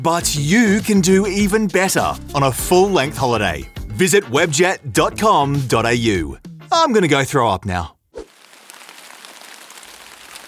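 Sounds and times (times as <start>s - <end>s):
speech: 0.0s - 8.0s
rain sound effect pattering: 8.2s - 10.4s.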